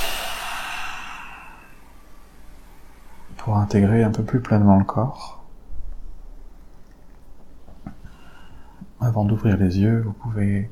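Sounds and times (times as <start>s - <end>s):
person breathing in deeply: 0.0s - 2.1s
speech: 3.4s - 5.4s, 9.1s - 10.6s.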